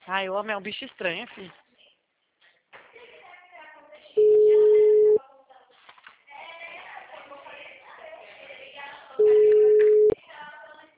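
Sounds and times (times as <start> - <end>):
speech: 0.1 - 1.6
telephone ringback tone while placing a call: 4.2 - 5.2, 9.2 - 10.2.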